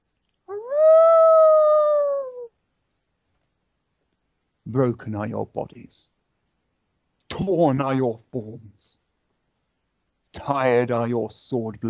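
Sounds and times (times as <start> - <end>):
wolf howling: 0.5 - 2.5
speech: 4.8 - 6.1, 7.4 - 9.0, 10.3 - 11.8.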